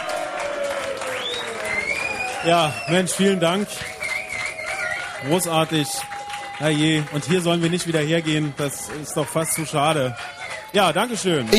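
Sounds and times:
audience applause: 0.0 - 11.5
thin whistles: 1.0 - 6.1
speech: 2.4 - 4.0, 5.2 - 11.5.

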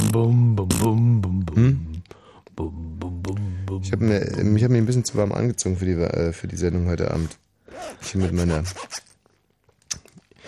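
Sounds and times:
speech: 0.1 - 1.8, 3.9 - 9.1
clothing zipper being pulled in raspy strokes: 7.2 - 9.2.

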